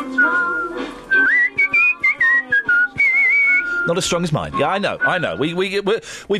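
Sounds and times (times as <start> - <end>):
man whistling a tune: 0.0 - 4.1, 4.9 - 5.7
speech: 3.9 - 6.3.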